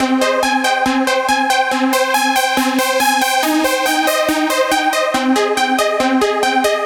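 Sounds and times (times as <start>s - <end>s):
sweet techno trance synth lead loop: 0.0s - 6.8s.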